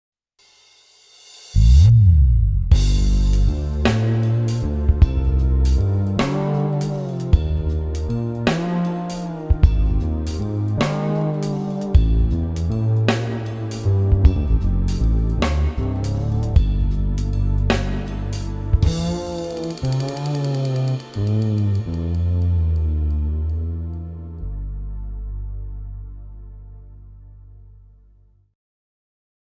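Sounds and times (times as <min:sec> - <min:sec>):
drums on Roland XP-80: 0:00.4 - 0:23.1
bass on Roland XP-80: 0:01.6 - 0:28.4.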